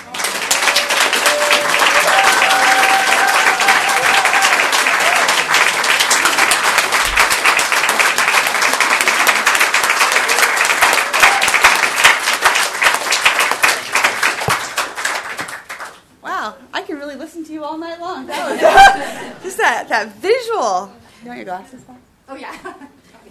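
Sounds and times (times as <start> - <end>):
crowd applauding: 0.0 - 16.0
faint whoops: 0.5 - 5.5, 11.1 - 11.8
laughter: 18.3 - 19.7
speech: 20.0 - 22.8.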